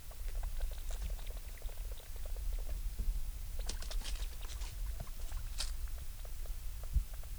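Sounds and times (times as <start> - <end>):
octodons crunching: 0.0 - 7.2.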